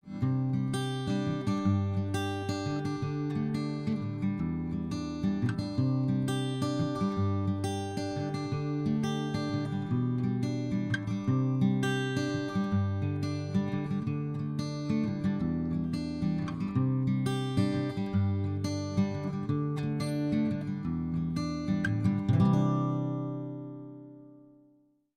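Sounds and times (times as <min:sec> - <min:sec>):
guitar picking: 0:00.0 - 0:24.6.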